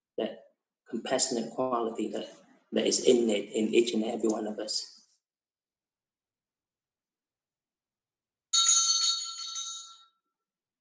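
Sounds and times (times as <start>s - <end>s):
speech: 0.9s - 5.0s
bell struck once ringing: 8.5s - 10.2s.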